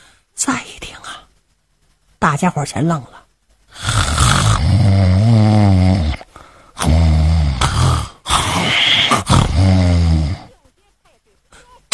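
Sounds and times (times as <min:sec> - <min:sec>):
speech: 0:00.4 - 0:00.7, 0:02.4 - 0:03.2
man loudly mimicking heavy snoring: 0:03.7 - 0:10.5.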